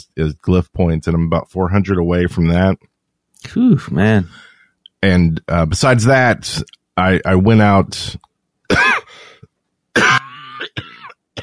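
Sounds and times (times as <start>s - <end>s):
speech: 0.0s - 8.8s
harsh raspy coughs with wheezy tail: 8.7s - 9.4s, 10.0s - 11.4s.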